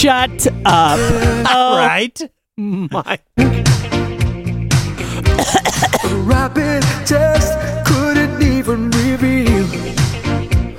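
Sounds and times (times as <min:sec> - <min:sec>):
pop music backing: 0:00.0 - 0:02.0, 0:03.4 - 0:10.7
speech: 0:00.0 - 0:03.9, 0:05.2 - 0:09.3
person coughing: 0:00.9 - 0:01.9, 0:05.2 - 0:06.2.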